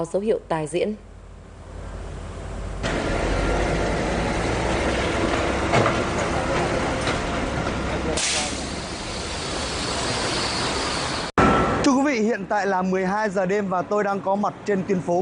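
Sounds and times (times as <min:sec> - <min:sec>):
speech: 0:00.0 - 0:01.1, 0:12.2 - 0:15.2
traffic ambience on a street in Hanoi Vietnam: 0:00.0 - 0:15.2
heavy sand-carrying truck engine droning on a street in Hanoi Vietnam: 0:01.1 - 0:11.8
brief burst of hissing noise: 0:08.1 - 0:11.3.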